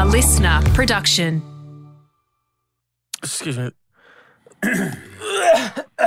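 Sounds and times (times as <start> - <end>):
speech: 0.2 - 1.5, 3.2 - 3.8, 4.6 - 6.0
person clearing throat: 4.5 - 6.0.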